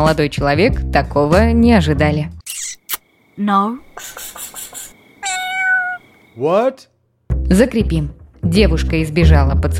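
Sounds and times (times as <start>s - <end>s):
speech: 0.0s - 2.8s, 3.4s - 4.4s, 6.4s - 6.9s, 7.5s - 9.7s
cat meowing: 5.2s - 6.2s.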